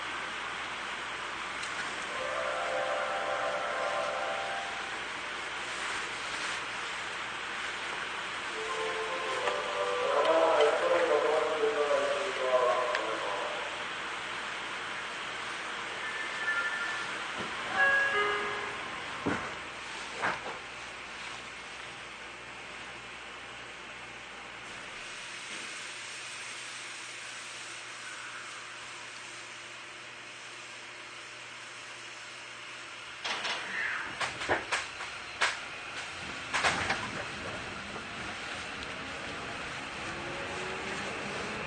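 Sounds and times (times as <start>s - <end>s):
electric train rumble: 0.1s - 20.7s, 34.2s - 41.6s
electric train motors whining as the train departs: 1.9s - 5.6s, 8.1s - 19.1s, 35.4s - 41.6s.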